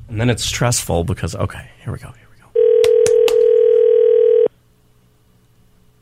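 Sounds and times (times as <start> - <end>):
speech: 0.2 - 2.2
steady telephone dial tone: 2.6 - 4.5.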